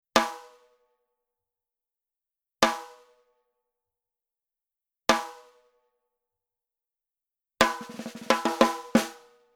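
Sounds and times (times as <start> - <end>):
snare drum rim shot: 7.6 - 9.2.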